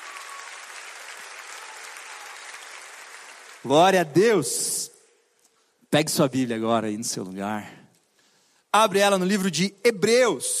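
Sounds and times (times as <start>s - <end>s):
large audience applauding: 0.0s - 4.0s
speech: 3.6s - 4.9s, 5.9s - 7.8s, 8.7s - 10.5s.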